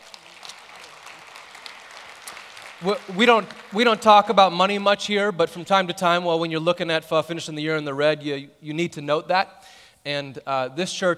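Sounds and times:
congregation applauding: 0:00.0 - 0:04.9
speech: 0:02.8 - 0:11.1.

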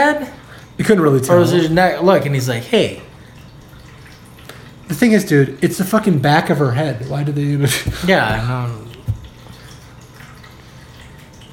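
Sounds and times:
speech: 0:00.1 - 0:03.1, 0:04.9 - 0:08.9
water trickling: 0:00.4 - 0:11.5
water splashing: 0:07.7 - 0:10.0.

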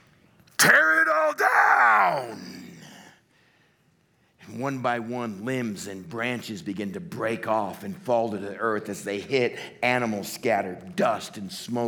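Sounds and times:
speech: 0:00.6 - 0:02.5, 0:04.6 - 0:11.8
person yelling from above: 0:00.6 - 0:03.0.

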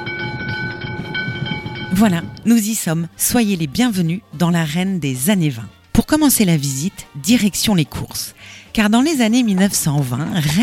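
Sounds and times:
low rumble of tram rolling: 0:00.0 - 0:03.3
tram bell dinging as a tram arrives in Rennes: 0:00.0 - 0:03.8
speech: 0:02.0 - 0:10.6.

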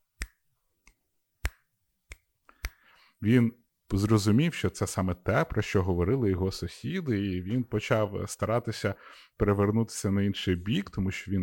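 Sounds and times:
sharp crisp finger snaps: 0:00.2 - 0:03.0
speech: 0:03.2 - 0:11.4.

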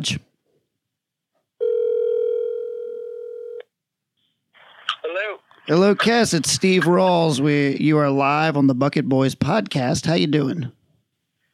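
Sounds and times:
speech: 0:00.0 - 0:00.3, 0:05.1 - 0:10.8
telephone dial tone of an incoming phone call: 0:01.6 - 0:03.7.

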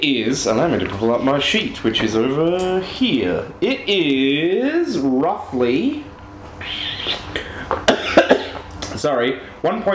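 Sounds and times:
speech: 0:00.0 - 0:07.2, 0:09.0 - 0:09.9
person coughing: 0:07.7 - 0:08.6.

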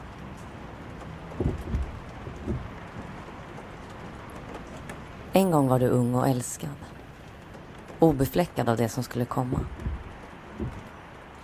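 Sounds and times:
steady rain on a car in a city heard from inside the car: 0:00.0 - 0:11.4
raindrops drumming on a car roof: 0:01.3 - 0:03.2, 0:09.7 - 0:10.9
speech: 0:05.4 - 0:06.9, 0:08.0 - 0:09.8, 0:10.6 - 0:10.8.

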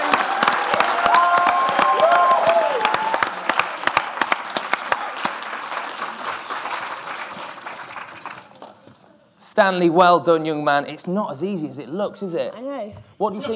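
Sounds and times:
crowd applause: 0:00.0 - 0:08.9
speech: 0:09.6 - 0:13.5.

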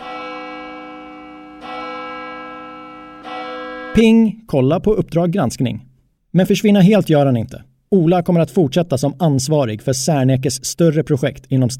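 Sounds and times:
large church bell tolling: 0:00.0 - 0:04.3
speech: 0:04.0 - 0:11.7.

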